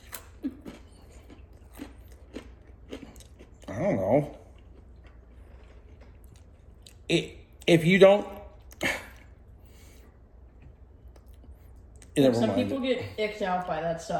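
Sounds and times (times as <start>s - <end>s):
chewing crunchy pizza crust: 0.0s - 7.7s
speech: 3.7s - 4.4s, 7.1s - 9.0s, 12.2s - 14.1s.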